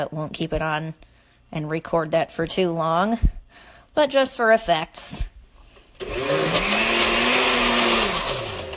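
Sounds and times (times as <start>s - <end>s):
speech: 0.0s - 5.3s
kitchen blender running: 6.0s - 8.7s.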